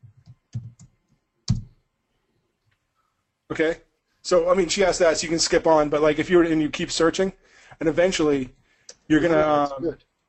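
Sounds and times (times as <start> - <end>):
typing on a computer keyboard: 0.1 - 1.8
speech: 3.5 - 10.1.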